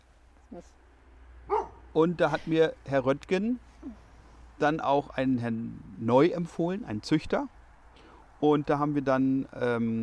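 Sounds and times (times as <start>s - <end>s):
low hum: 0.0s - 10.0s
speech: 0.5s - 0.8s, 2.0s - 4.0s, 4.6s - 7.6s, 8.4s - 10.0s
dog barking: 1.5s - 1.9s.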